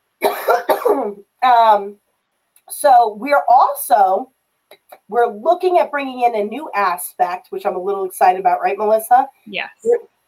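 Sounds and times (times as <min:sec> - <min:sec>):
loud harsh coughs with a throaty voiced rasp: 0:00.2 - 0:01.2
speech: 0:00.5 - 0:02.0, 0:02.7 - 0:10.2.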